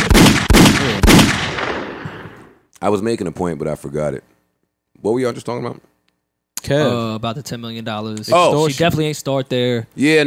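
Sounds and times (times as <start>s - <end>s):
gunshot sound effects: 0.0s - 2.6s
speech: 2.8s - 4.4s, 5.0s - 5.9s, 6.6s - 10.2s.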